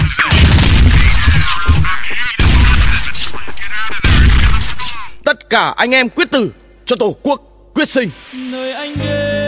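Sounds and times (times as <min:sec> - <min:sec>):
ship's guns firing at enemy aircraft: 0:00.0 - 0:03.3, 0:04.0 - 0:05.0
speech: 0:05.5 - 0:09.3.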